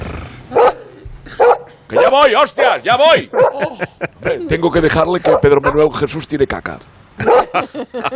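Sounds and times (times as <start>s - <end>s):
dog barking: 0.5s - 2.7s, 3.3s - 3.6s, 5.2s - 5.8s, 7.2s - 7.6s
speech: 1.9s - 8.1s
laughter: 3.2s - 4.6s, 7.2s - 8.1s.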